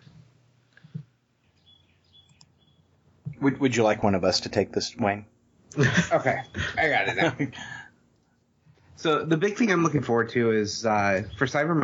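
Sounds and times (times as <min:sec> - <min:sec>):
low hum: 0:00.0 - 0:11.8
birds chirping: 0:01.3 - 0:04.6, 0:05.3 - 0:07.9, 0:10.8 - 0:11.8
speech: 0:03.4 - 0:07.8, 0:09.0 - 0:11.8
laughter: 0:05.7 - 0:07.9.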